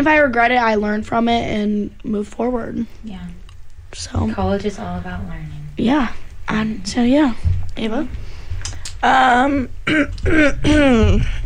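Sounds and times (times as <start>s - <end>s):
speech: 0.0s - 8.2s, 9.0s - 11.4s
throat clearing: 9.8s - 11.4s.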